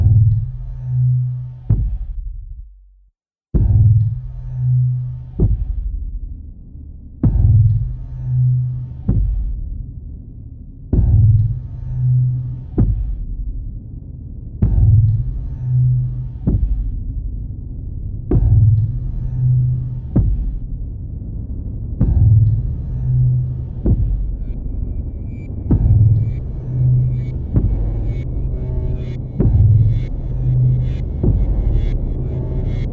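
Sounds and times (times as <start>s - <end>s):
heartbeat-like throb from old synthesizer thud and sampled kick to a guitar amp: 0.0s - 2.7s, 3.5s - 32.9s
steady humming drone: 14.6s - 32.9s.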